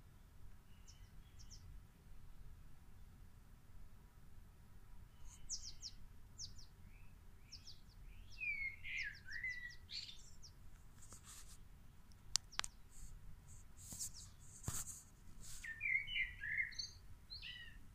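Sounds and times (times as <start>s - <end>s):
birds chirping with high thin notes: 5.1s - 11.4s, 12.3s - 12.9s, 13.8s - 17.8s.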